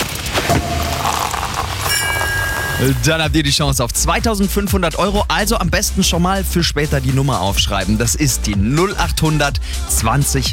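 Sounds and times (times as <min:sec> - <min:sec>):
fizzing sparkling wine foam: 0:00.0 - 0:03.9
sparkling wine cork popping: 0:00.4 - 0:03.0
faint glassy ringing: 0:00.5 - 0:03.5
speech: 0:02.8 - 0:10.5.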